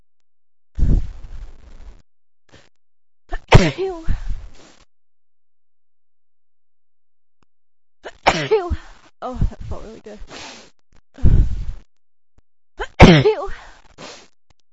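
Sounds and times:
person sneezing loudly in autumn: 0:03.3 - 0:04.1, 0:12.8 - 0:14.2
speech: 0:03.6 - 0:04.2, 0:08.4 - 0:10.6, 0:13.1 - 0:13.6.

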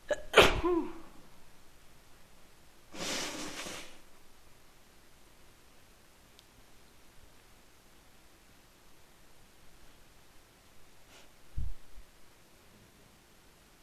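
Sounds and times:
woman with a cold sneezing wetly: 0:00.1 - 0:01.1
woman with a cold blowing her nose: 0:02.9 - 0:04.0.

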